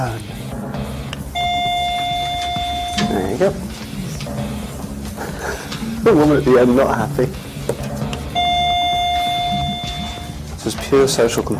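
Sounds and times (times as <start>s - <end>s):
speech: 0.0s - 0.4s, 3.0s - 4.5s, 5.5s - 7.8s, 10.9s - 11.5s
electronic bell ringing: 1.3s - 5.1s, 8.3s - 10.5s
laughter: 4.9s - 6.6s.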